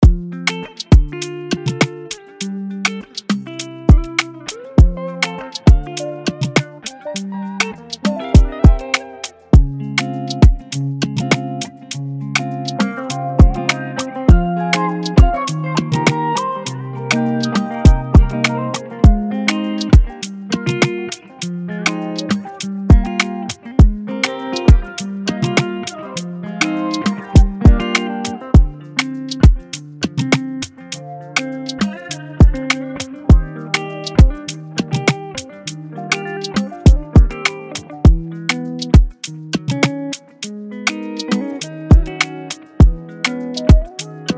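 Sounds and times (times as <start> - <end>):
Afrobeats guitars and rhythms: 0.0 - 44.3.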